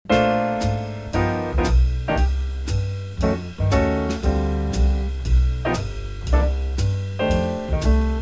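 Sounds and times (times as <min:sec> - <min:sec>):
chords in B flat: 0:00.1 - 0:08.2.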